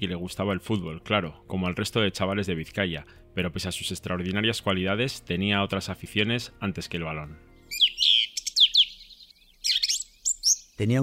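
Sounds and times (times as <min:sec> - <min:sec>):
speech: 0:00.0 - 0:07.5, 0:10.8 - 0:11.0
birds chirping: 0:07.5 - 0:11.0.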